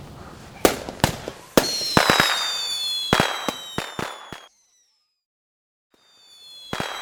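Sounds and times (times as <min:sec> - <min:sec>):
fireworks exploding on Guy Fawkes night: 0:00.0 - 0:04.6, 0:06.1 - 0:07.0.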